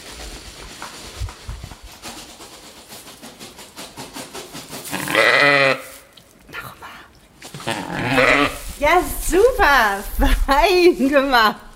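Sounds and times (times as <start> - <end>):
sheep bleating: 4.9 - 5.9, 7.6 - 8.6
speech: 8.9 - 11.6.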